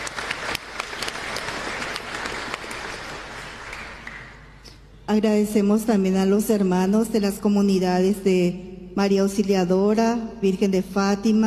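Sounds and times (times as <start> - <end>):
audience applauding in a reverberant church: 0.0 - 4.6
speech: 5.1 - 11.4.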